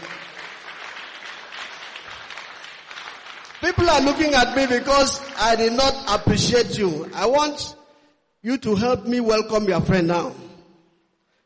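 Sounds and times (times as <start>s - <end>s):
crowd clapping hands in dense applause: 0.0s - 6.3s
speech: 3.6s - 7.8s, 8.4s - 10.4s.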